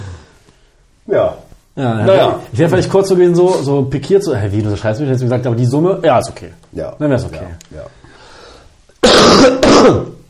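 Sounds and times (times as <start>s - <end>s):
speech: 1.1s - 8.0s, 9.4s - 10.1s
harsh raspy throaty cough: 9.0s - 10.2s.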